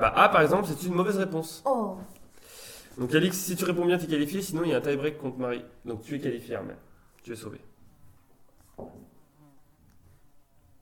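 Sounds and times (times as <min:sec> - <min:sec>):
speech: 0:00.0 - 0:02.1, 0:03.0 - 0:07.7, 0:08.8 - 0:09.0
fly buzzing: 0:09.0 - 0:10.5.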